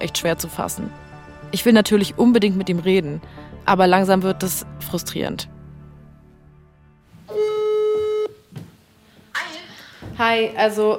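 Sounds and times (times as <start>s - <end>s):
speech: 0.0s - 5.6s, 10.2s - 10.9s
ringing tone of an unanswered phone call: 7.3s - 8.4s.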